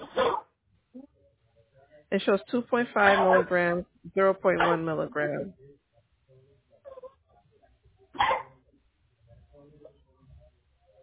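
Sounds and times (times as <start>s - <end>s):
quieter talking: 1.8s - 5.5s
speech: 2.1s - 5.6s
single loud sharp dog bark: 8.2s - 8.5s.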